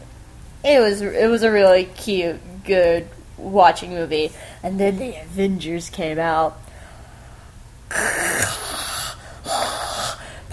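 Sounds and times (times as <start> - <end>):
speech: 0.6 - 6.6
person excitedly mouth breathing with a raspy wheezy edge: 7.9 - 10.5.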